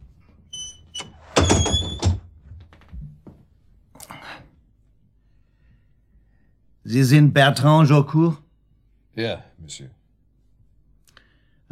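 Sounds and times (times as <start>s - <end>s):
door being closed with a thud: 1.0s - 3.1s
knocks and clatter: 1.0s - 3.4s
speech: 6.9s - 8.4s, 9.2s - 10.0s.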